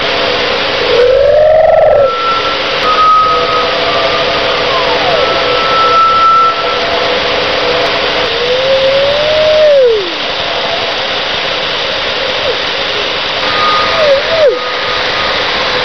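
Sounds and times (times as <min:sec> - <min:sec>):
wind: 0:00.0 - 0:15.8
random Doppler shifting tones: 0:00.6 - 0:08.4.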